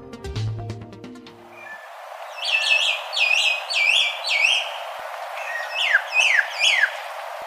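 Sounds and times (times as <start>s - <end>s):
scarlet-rumped cacique singing whistled phrases: 1.5s - 7.1s.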